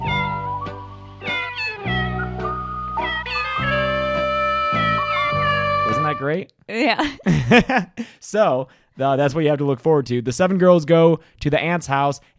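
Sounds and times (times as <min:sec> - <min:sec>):
sustained musical tones: 0:00.0 - 0:06.4
song of cat meows from a film: 0:01.2 - 0:06.2
speech: 0:06.2 - 0:12.3
laughter: 0:07.0 - 0:08.0.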